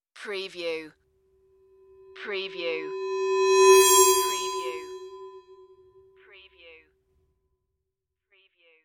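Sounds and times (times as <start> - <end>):
bright whoosh: 1.8 - 6.1.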